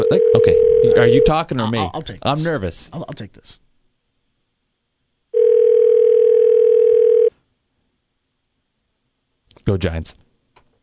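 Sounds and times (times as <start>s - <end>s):
speech: 0.0s - 3.6s, 9.6s - 10.2s
telephone dial tone while calling: 5.4s - 7.3s.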